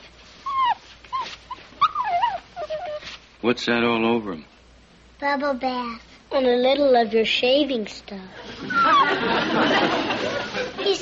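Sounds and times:
small stray mongrel puppy whimpering: 0.4s - 3.2s, 8.7s - 9.2s
speech: 3.4s - 4.5s, 5.2s - 10.1s
laughter: 8.4s - 11.0s.

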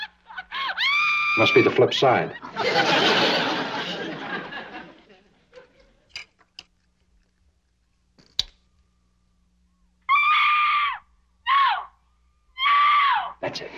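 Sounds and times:
high shrill cry: 0.0s - 1.9s, 10.0s - 13.4s
laughter: 0.0s - 6.1s
loud harsh recorded scream played from a record: 0.5s - 2.0s, 10.1s - 12.0s, 12.6s - 13.4s
speech: 1.4s - 3.2s
sharp clicks: 8.2s - 8.6s.

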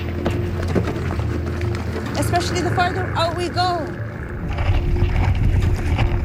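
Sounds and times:
boat rocking back and forth breaking through ice: 0.0s - 6.2s
speech: 2.3s - 4.0s.

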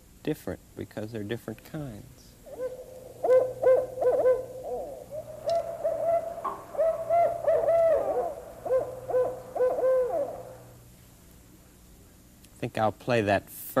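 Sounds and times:
speech: 0.2s - 2.3s, 12.7s - 13.7s
barred owl hooting and caterwauling: 2.4s - 10.9s.

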